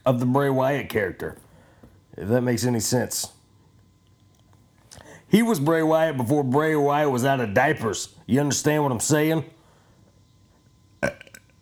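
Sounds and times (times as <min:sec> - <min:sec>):
speech: 0:00.0 - 0:01.4, 0:02.2 - 0:03.4, 0:05.3 - 0:09.6
loud beer burp: 0:11.0 - 0:11.5.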